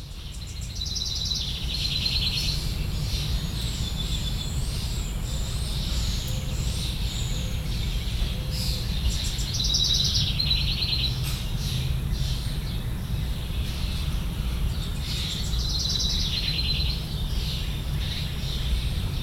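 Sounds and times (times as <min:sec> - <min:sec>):
birds chirping at a higher pitch: 0:00.0 - 0:19.2.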